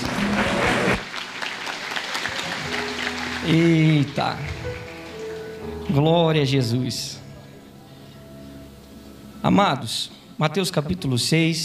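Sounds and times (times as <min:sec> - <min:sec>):
audience applause: 0:00.0 - 0:05.8
speech: 0:03.5 - 0:04.6, 0:05.9 - 0:07.2, 0:09.4 - 0:11.6.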